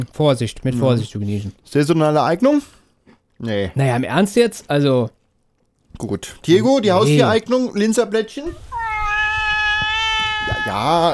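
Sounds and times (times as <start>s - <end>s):
speech: 0.0s - 2.8s, 3.4s - 5.2s, 5.9s - 8.7s, 10.7s - 11.1s
long drawn-out cat meow: 8.5s - 11.1s.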